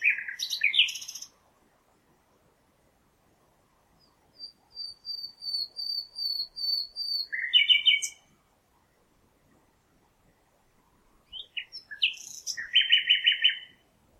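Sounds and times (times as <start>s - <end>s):
common nightingale Luscinia megarhynchos singing: 0.0s - 1.4s, 4.0s - 8.3s, 11.2s - 13.9s.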